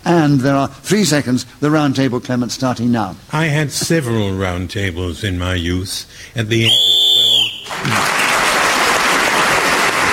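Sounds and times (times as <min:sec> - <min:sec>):
speech: 0:00.2 - 0:07.0, 0:07.8 - 0:08.2
shrill whistle blast: 0:06.6 - 0:07.8
audience applause: 0:07.6 - 0:10.1.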